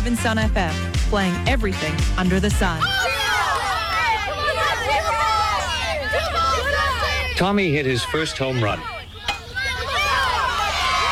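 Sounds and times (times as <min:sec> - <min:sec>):
speech: 0:00.0 - 0:03.2, 0:07.4 - 0:09.0
loud dense crowd cheering and shouting: 0:02.8 - 0:11.0.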